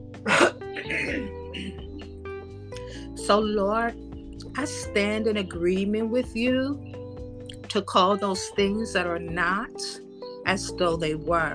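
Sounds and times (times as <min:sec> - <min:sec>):
person coughing: 0:00.3 - 0:01.8
person raspily clearing throat: 0:00.3 - 0:01.8
speech: 0:03.3 - 0:04.0, 0:04.6 - 0:06.9, 0:07.7 - 0:11.5.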